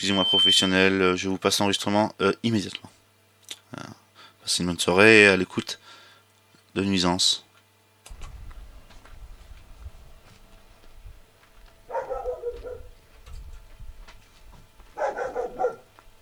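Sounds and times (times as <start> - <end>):
speech: 0.0 - 3.0, 3.7 - 5.8, 6.8 - 7.4
low steady rumble: 8.1 - 16.2
dog barking: 11.9 - 13.0, 15.0 - 16.0.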